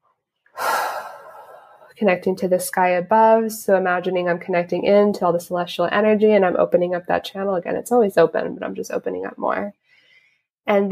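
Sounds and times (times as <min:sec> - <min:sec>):
deep breath taken during a grounding meditation: 0:00.6 - 0:02.0, 0:09.8 - 0:10.5
speech: 0:02.0 - 0:09.8, 0:10.6 - 0:10.9.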